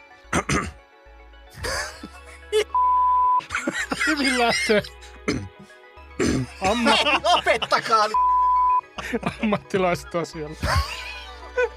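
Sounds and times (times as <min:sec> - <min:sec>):
gruff throat clearing: 0:00.3 - 0:00.8, 0:05.3 - 0:05.6, 0:06.2 - 0:06.6
brief steady beep tone: 0:02.8 - 0:03.4, 0:08.1 - 0:08.9
laughter: 0:03.4 - 0:05.0, 0:06.4 - 0:08.2, 0:09.0 - 0:10.0, 0:10.6 - 0:11.7
speech: 0:04.2 - 0:05.5, 0:06.6 - 0:08.3, 0:09.1 - 0:11.0.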